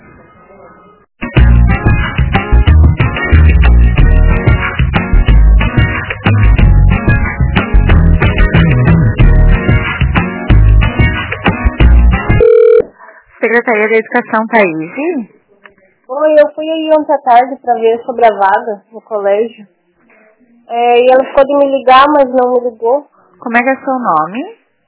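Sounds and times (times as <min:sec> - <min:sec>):
music on hold over a telephone line during a call transfer: 0:01.2 - 0:12.9
speech: 0:13.8 - 0:15.4, 0:16.1 - 0:19.8, 0:20.7 - 0:24.6.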